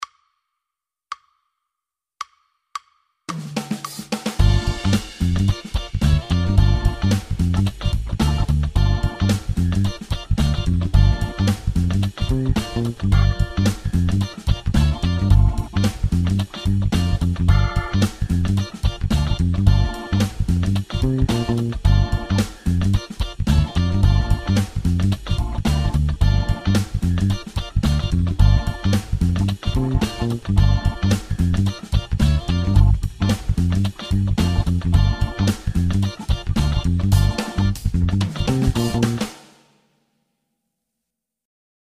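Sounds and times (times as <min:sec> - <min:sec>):
funk bass line in G minor at 110 bpm: 0:04.4 - 0:39.3.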